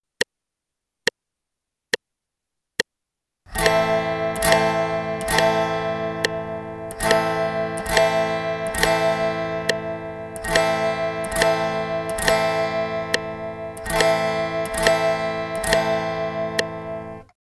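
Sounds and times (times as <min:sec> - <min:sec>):
guitar strumming G and Am chords in quarter notes: 0:03.5 - 0:17.4.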